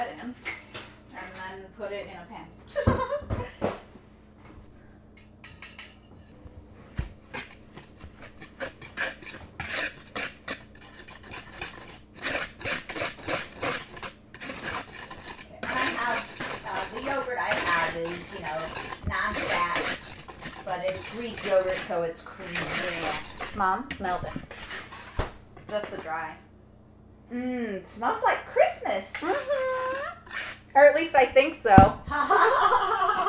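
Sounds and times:
speech: 0:00.2 - 0:00.5, 0:01.8 - 0:03.5, 0:21.1 - 0:24.4, 0:25.7 - 0:26.4, 0:27.3 - 0:29.4, 0:30.8 - 0:32.0
laughter: 0:02.8 - 0:03.5, 0:32.0 - 0:33.2
whisk scraping a bowl while stirring dry baking ingredients: 0:05.5 - 0:26.1, 0:29.1 - 0:30.9.

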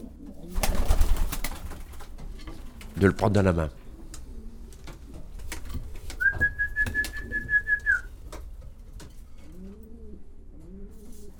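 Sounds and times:
pigeons cooing in a pigeon fancier's loft: 0:00.0 - 0:11.3
speech: 0:03.0 - 0:03.8
brief whistle-like tone: 0:06.2 - 0:08.1.

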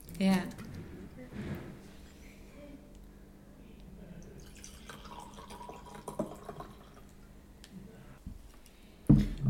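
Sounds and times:
speech: 0:00.2 - 0:00.6
light fruity sparkling wine poured into glasses, trickling and fizzing: 0:04.4 - 0:07.2.

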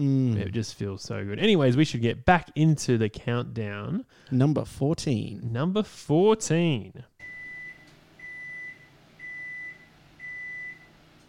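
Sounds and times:
speech: 0:00.0 - 0:07.2
microwave oven beeping: 0:07.2 - 0:11.2.

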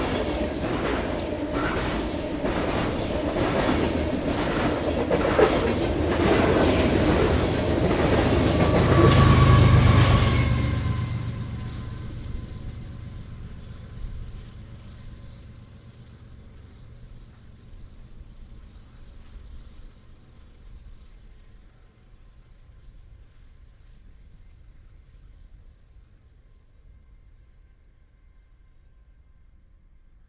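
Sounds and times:
freight train wheels clattering: 0:00.0 - 0:15.5
long freight train passing in Columbia Hills State Park: 0:00.0 - 0:26.2.

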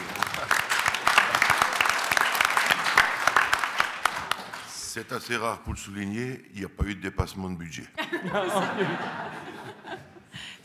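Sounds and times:
laughter: 0:00.0 - 0:01.8, 0:08.0 - 0:10.6
crowd applauding: 0:00.0 - 0:04.9
speech: 0:05.0 - 0:09.4.

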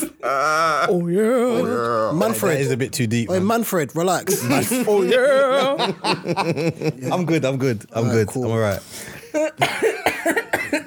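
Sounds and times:
speech: 0:00.0 - 0:10.8
laughter: 0:04.3 - 0:07.5
harsh chesty coughs: 0:09.0 - 0:10.8.

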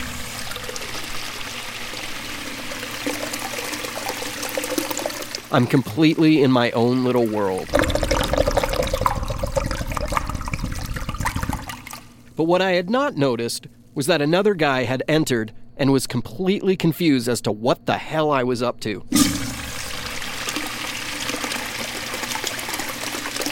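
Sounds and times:
urinal flushing: 0:00.0 - 0:12.4, 0:19.1 - 0:23.4
speech: 0:05.5 - 0:07.9, 0:12.4 - 0:19.2.

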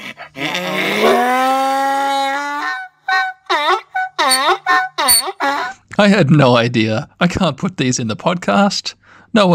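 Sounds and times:
donkey braying: 0:00.0 - 0:05.8
speech: 0:06.0 - 0:09.5.

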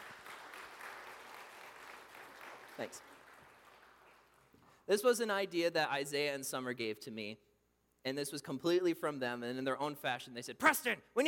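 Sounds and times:
audience applause: 0:00.0 - 0:04.5
speech: 0:02.8 - 0:03.2, 0:04.9 - 0:11.2.

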